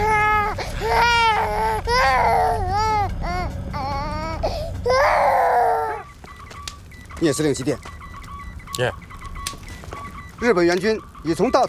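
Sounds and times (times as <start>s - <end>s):
infant crying in loud repeated wailing bursts: 0.0s - 6.1s
speech: 7.2s - 8.0s, 8.8s - 9.1s, 10.4s - 11.6s.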